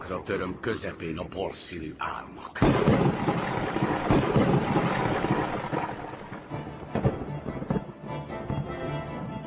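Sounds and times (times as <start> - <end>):
dense wind of a sea storm: 0.0 - 9.4
speech: 0.1 - 4.6
rain of a sea storm: 2.6 - 7.6
heavy thunder rumbling and cracking over a sea storm: 2.6 - 7.8.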